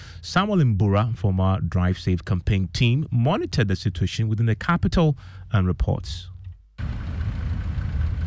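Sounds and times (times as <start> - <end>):
speech: 0.2 - 7.0
road traffic noise at a busy highway intersection with broken traffic lights: 6.8 - 8.2
rumbling engines and idling vehicles: 6.8 - 8.2.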